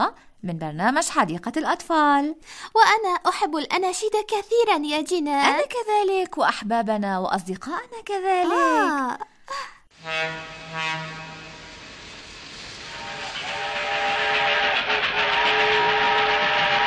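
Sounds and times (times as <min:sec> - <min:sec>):
speech: 0:00.0 - 0:11.4
fast train whistle: 0:10.0 - 0:16.8.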